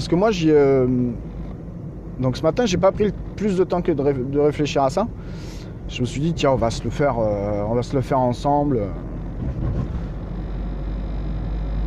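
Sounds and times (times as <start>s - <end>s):
speech: 0.0s - 1.3s, 2.2s - 9.6s
low road rumble inside a moving car: 0.0s - 11.8s.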